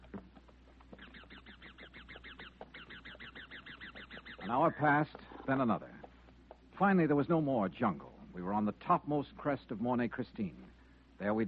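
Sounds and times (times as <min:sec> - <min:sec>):
wild parrots screeching above a forest of bamboo and giant tree ferns: 0:00.9 - 0:04.8
speech: 0:04.5 - 0:06.0, 0:06.8 - 0:11.4.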